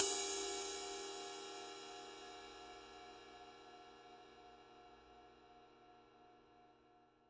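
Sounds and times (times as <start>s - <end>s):
22 inch ride cymbal body: 0.0s - 3.7s.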